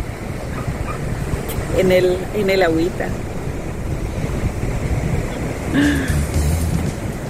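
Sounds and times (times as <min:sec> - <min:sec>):
gusty wind buffeting the microphone: 0:00.0 - 0:07.2
sea waves rushing and washing: 0:00.0 - 0:07.2
speech: 0:01.8 - 0:03.3, 0:05.8 - 0:06.3.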